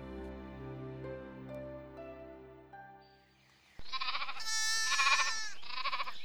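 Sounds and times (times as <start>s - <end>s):
soft sustained music: 0.0s - 3.6s
sheep bleating: 3.9s - 6.2s.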